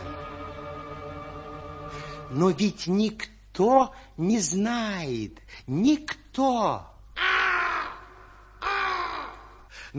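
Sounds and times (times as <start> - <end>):
speech: 2.3 - 6.9
black raven cawing: 7.2 - 9.5.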